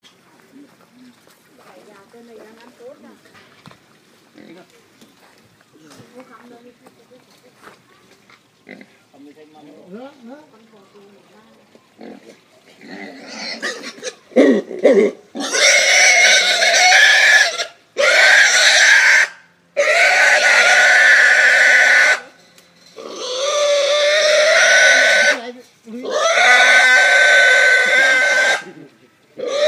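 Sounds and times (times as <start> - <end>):
pig being gagged at slaughter: 12.0 - 22.4, 23.0 - 28.8, 29.4 - 29.6.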